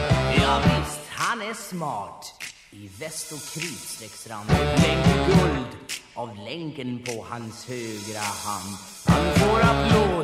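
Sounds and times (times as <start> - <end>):
steady driving bass-and-drum beat: 0.0 - 1.4, 2.4 - 6.1, 7.1 - 10.2
lively sung vocals: 0.0 - 2.1, 2.8 - 10.2
upbeat Swedish-language disco song by a dance band: 0.0 - 10.2
speech: 1.4 - 10.2.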